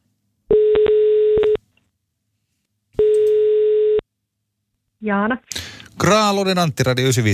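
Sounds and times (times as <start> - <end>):
telephone ringback tone of a call to a contest winner: 0.5 - 1.6, 3.0 - 4.0
speech: 5.0 - 7.3.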